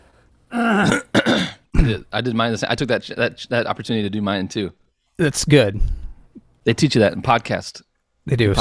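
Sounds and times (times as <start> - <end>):
person clearing throat: 0.5 - 2.1
speech: 1.9 - 6.0, 6.6 - 8.5.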